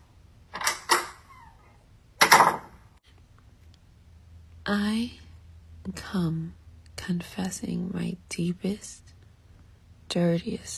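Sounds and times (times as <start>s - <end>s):
door creaking: 0.5s - 1.6s, 2.2s - 2.8s
door latch clicks: 0.6s - 1.2s
speech: 4.7s - 5.2s, 5.8s - 9.1s, 10.1s - 10.7s.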